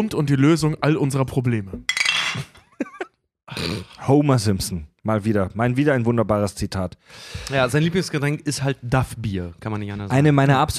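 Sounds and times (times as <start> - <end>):
speech: 0.0 - 10.7
glasses clinking in a toast: 1.8 - 2.6.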